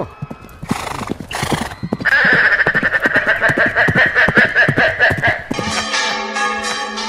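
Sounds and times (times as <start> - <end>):
bells ringing: 0.0 - 2.1, 5.5 - 7.0
horses neighing and whinnying: 0.0 - 5.8
horses galloping with hooves clip-clopping on street pavement: 0.0 - 5.9
laughter: 2.1 - 5.8.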